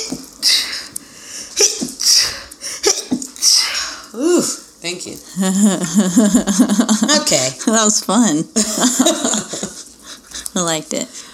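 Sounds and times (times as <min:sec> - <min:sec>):
person sneezing: 0:00.4 - 0:00.9, 0:01.6 - 0:04.6
speech: 0:04.9 - 0:09.6, 0:10.6 - 0:11.3
laughter: 0:05.4 - 0:07.8, 0:08.6 - 0:10.5.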